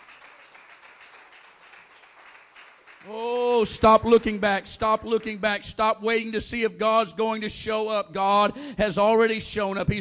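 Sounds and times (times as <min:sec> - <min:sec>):
audience applause: 0:00.0 - 0:04.2
speech: 0:03.0 - 0:10.0.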